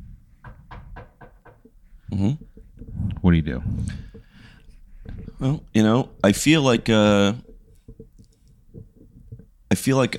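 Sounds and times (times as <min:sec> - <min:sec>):
knocking on a door: 0:00.4 - 0:01.8
speech: 0:02.1 - 0:02.5, 0:03.3 - 0:04.1, 0:05.4 - 0:07.5, 0:09.8 - 0:10.1.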